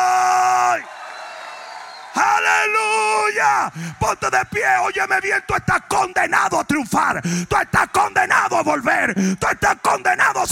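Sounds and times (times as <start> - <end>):
audience shouting glory: 0.0 - 5.7
crowd noise: 0.0 - 6.6
speech: 2.6 - 10.5.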